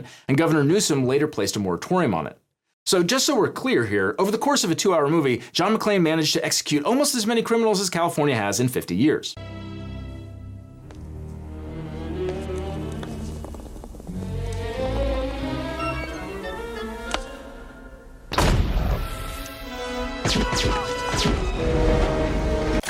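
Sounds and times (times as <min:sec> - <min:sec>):
speech: 0:00.0 - 0:09.8
tonal backdrop: 0:09.4 - 0:22.8
crackling rumble of scattered impacts: 0:12.5 - 0:14.8
firework or flashbang going off: 0:18.3 - 0:19.4.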